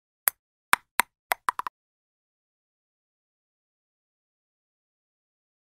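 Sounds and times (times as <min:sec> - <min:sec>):
table tennis ball bouncing: 0:00.7 - 0:01.7.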